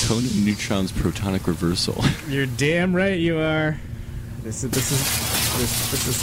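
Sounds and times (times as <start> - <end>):
speech: 0.1 - 6.2
loud crash of shattering glass: 4.7 - 6.2.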